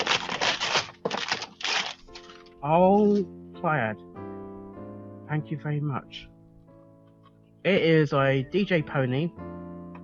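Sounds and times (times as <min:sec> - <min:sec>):
wrapping paper ripped open on a Christmas present: 0:00.0 - 0:03.2
speech: 0:02.6 - 0:04.3, 0:05.3 - 0:06.3, 0:07.6 - 0:09.6.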